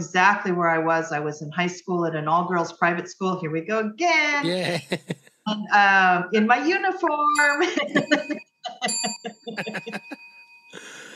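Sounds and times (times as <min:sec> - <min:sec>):
speech: 0:00.0 - 0:10.2
person chuckling: 0:04.4 - 0:05.2, 0:07.7 - 0:10.2, 0:10.8 - 0:11.1
bell dinging: 0:07.4 - 0:11.1.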